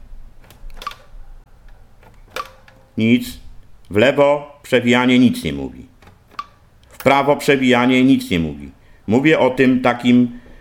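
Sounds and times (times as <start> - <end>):
quiet hiss: 0.0 - 10.5
speech: 3.0 - 5.9, 7.0 - 10.4
buttons pressed on the top of a device: 6.0 - 7.2.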